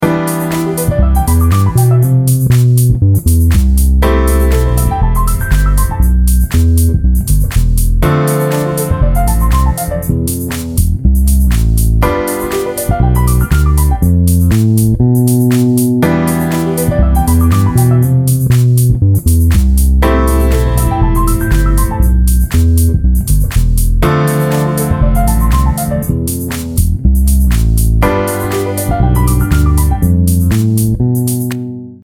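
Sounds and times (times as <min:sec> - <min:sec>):
keyboard playing G7 chord: 0:00.0 - 0:02.4, 0:04.0 - 0:06.2, 0:08.0 - 0:10.4, 0:12.0 - 0:14.4, 0:16.0 - 0:18.4, 0:20.0 - 0:22.6, 0:24.0 - 0:26.4, 0:28.0 - 0:30.4
bass playing in C major: 0:00.7 - 0:32.0.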